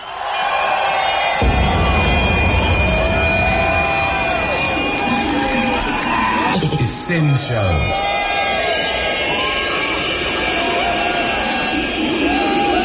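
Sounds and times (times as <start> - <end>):
loud dense club crowd roaring and cheering: 0.0 - 12.8
people whooping and shouting: 0.0 - 12.8
booming low rumble: 1.4 - 5.6
speech: 7.1 - 8.2.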